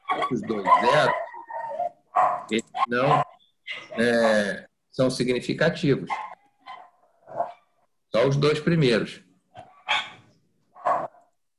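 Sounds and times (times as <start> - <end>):
small dog barking: 0.0 - 4.0, 6.1 - 7.6, 9.8 - 10.2, 10.8 - 11.2
speech: 0.2 - 1.3, 2.2 - 6.3, 8.1 - 9.2.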